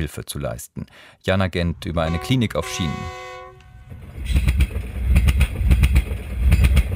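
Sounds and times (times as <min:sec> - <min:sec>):
speech: 0:00.0 - 0:03.3, 0:03.9 - 0:04.7
train wheels clacking over rail joints: 0:04.1 - 0:06.9.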